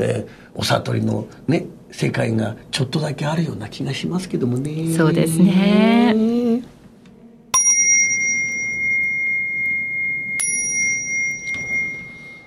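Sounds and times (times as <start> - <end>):
speech: 0.0 - 6.7
bell ringing: 7.5 - 12.4.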